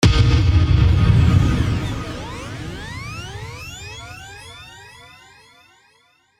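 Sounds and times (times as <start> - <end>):
flanged impact hit with delay: 0.0 - 4.7.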